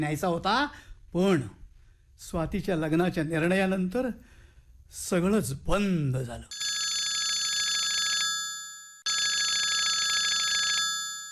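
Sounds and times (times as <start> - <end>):
speech: 0.0 - 1.6, 2.2 - 4.3, 4.9 - 6.6
electronic telephone ringing: 6.5 - 11.3.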